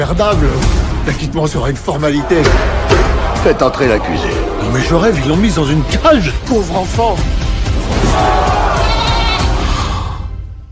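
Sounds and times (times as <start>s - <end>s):
speech: 0.0s - 8.4s
goat bleating in a long wavering cry: 8.8s - 9.5s.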